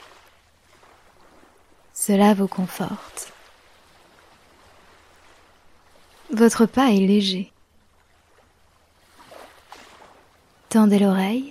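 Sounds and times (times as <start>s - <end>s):
soft surf washing on a sandy beach: 0.0s - 11.4s
speech: 2.1s - 3.4s, 6.3s - 7.5s, 10.7s - 11.4s.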